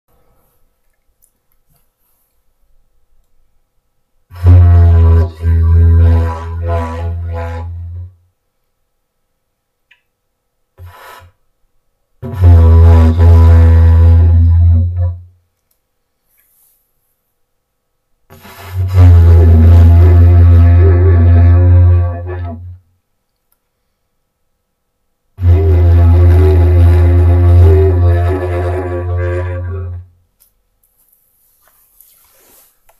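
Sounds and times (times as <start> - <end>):
didgeridoo playing attempt: 4.3 - 8.2, 12.2 - 15.3, 18.3 - 22.8, 25.4 - 30.1.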